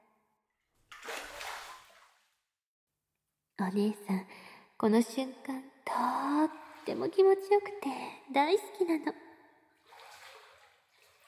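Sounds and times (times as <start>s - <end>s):
water sloshing as a person sinks into a filled bathtub: 0.8s - 2.5s, 6.1s - 7.8s, 9.7s - 11.2s
speech: 3.6s - 9.2s.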